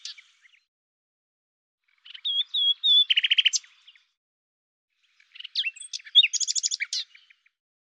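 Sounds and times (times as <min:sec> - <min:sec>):
common nightingale song: 0:00.0 - 0:00.7, 0:01.8 - 0:04.2, 0:05.0 - 0:07.6.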